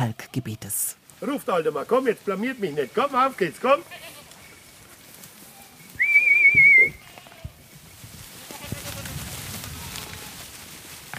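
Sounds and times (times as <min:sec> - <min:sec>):
speech: 0:00.0 - 0:04.2
herd of goats walking along country roads: 0:00.0 - 0:11.1
herd of goats bleating: 0:02.3 - 0:05.9, 0:06.8 - 0:07.6, 0:08.4 - 0:10.5
shepherd whistling: 0:06.0 - 0:07.0.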